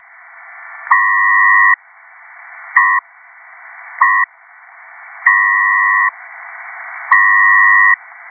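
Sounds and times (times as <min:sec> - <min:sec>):
PACTOR-III two-tone mode data signal: 0:00.9 - 0:01.8, 0:02.8 - 0:03.0, 0:04.0 - 0:04.3, 0:05.3 - 0:06.2, 0:07.1 - 0:08.0.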